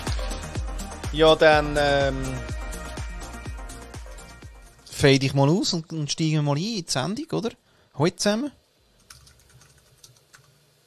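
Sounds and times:
speech: 1.1s - 2.6s, 5.0s - 8.6s
low hum: 3.8s - 10.8s
keystrokes on a computer keyboard: 9.0s - 10.6s.

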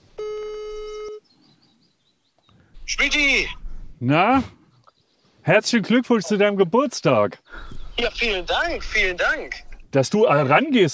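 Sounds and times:
telephone ringback tone: 0.2s - 1.2s
speech: 3.0s - 4.6s, 5.5s - 10.9s.

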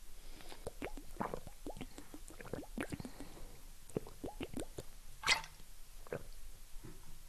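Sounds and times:
person drinking a sip of water: 0.4s - 4.9s.

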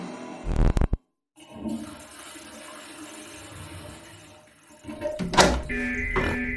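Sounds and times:
door opening with a clunk and latch rattle: 5.0s - 6.5s.

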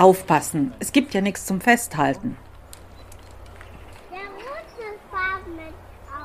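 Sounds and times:
speech: 0.0s - 2.5s
outdoor noise: 0.0s - 6.2s
children calling and chattering at a playground in a park: 2.4s - 6.2s.

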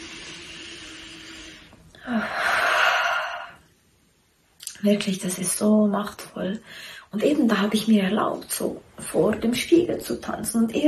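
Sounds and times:
deep breath taken together: 0.0s - 3.8s
speech: 2.1s - 2.4s, 4.8s - 10.8s.

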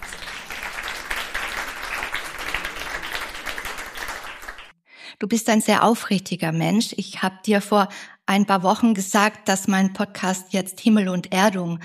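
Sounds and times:
crowd applauding: 0.0s - 4.7s
speech: 5.2s - 11.8s.

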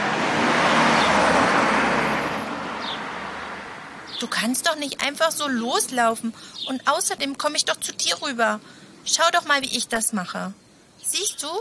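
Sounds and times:
single car passing on a street: 0.0s - 6.0s
speech: 4.2s - 11.5s.

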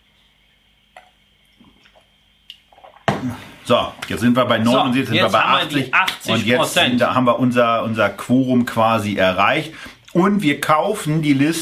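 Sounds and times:
small wet sounds: 0.6s - 4.2s
soft water drips: 0.9s - 3.4s
water pouring loudly and steadily: 1.6s - 3.7s
speech: 3.2s - 11.6s.

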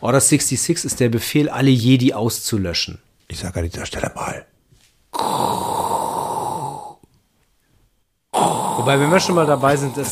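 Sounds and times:
speech: 0.0s - 4.5s, 5.1s - 5.6s, 8.8s - 10.1s
loud rasping breathy snoring: 5.1s - 7.1s, 8.3s - 10.1s.

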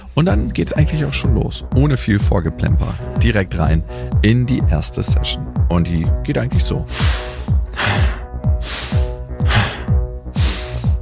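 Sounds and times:
fast breathing in through the nose and out through the mouth during breathwork: 0.0s - 1.2s, 2.6s - 4.3s, 6.8s - 11.0s
low steady musical beat: 0.0s - 11.0s
speech: 0.2s - 8.1s.

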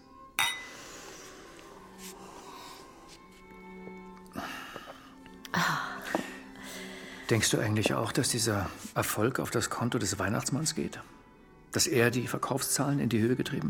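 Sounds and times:
champagne glasses clinking in a toast: 0.4s - 0.8s
speech: 7.3s - 13.6s.

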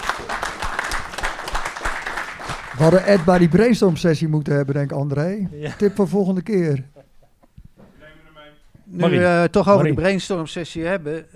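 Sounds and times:
audience applause at a meeting: 0.0s - 3.9s
speech: 2.8s - 6.9s, 8.9s - 11.3s.

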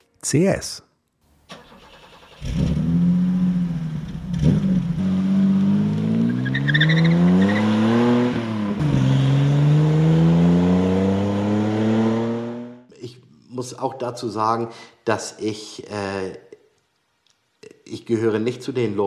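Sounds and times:
speech: 0.2s - 0.9s, 13.6s - 16.4s, 17.9s - 19.0s
BMW 3.0 CS coupe engine revving through gear changes: 1.6s - 12.9s.

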